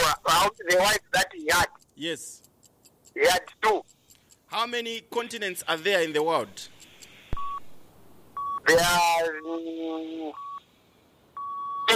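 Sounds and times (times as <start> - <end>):
timer beeping: 0.0 - 7.7, 8.3 - 9.6, 10.3 - 10.6, 11.4 - 11.9
speech: 0.4 - 2.4, 3.2 - 3.9, 4.5 - 6.7, 8.6 - 10.5.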